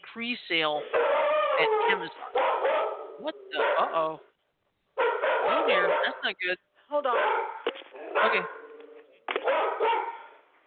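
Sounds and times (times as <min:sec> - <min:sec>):
speech: 0:00.2 - 0:02.6, 0:03.2 - 0:04.3, 0:05.0 - 0:07.5, 0:08.2 - 0:08.6
dogs barking: 0:00.8 - 0:04.2, 0:05.0 - 0:06.3, 0:07.1 - 0:10.4.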